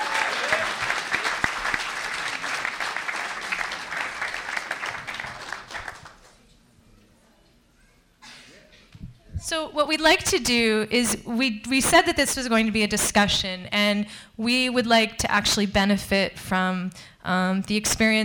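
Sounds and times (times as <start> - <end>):
audience applause at an evening discussion: 0.0 - 6.4
speech: 9.5 - 18.2.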